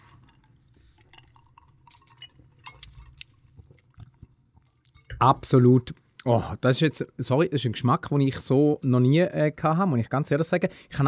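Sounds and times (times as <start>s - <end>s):
quiet rustling background: 0.0s - 6.4s
ice cubes clinking inside a drinking glass during a toast: 0.1s - 3.2s
speech: 5.2s - 11.0s.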